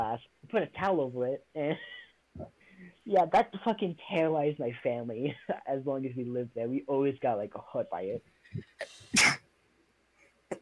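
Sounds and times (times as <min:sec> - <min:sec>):
speech: 0:00.2 - 0:09.4
sneeze: 0:09.1 - 0:09.4.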